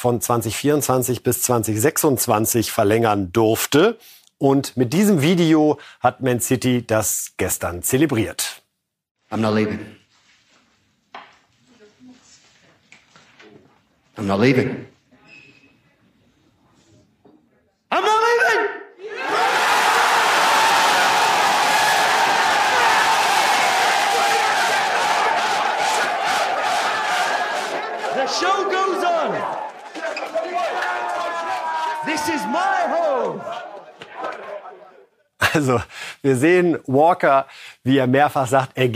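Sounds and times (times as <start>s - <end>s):
speech: 0.0s - 8.6s, 9.3s - 10.0s, 14.2s - 14.9s, 35.6s - 38.9s
football players cheering and shouting: 19.0s - 35.0s.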